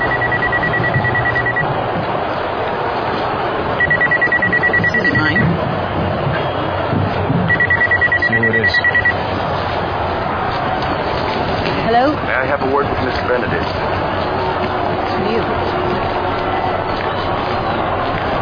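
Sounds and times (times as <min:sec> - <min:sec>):
cell phone ringing: 0:00.0 - 0:01.6, 0:03.8 - 0:05.4, 0:07.5 - 0:09.2
busy noisy background: 0:00.0 - 0:18.4.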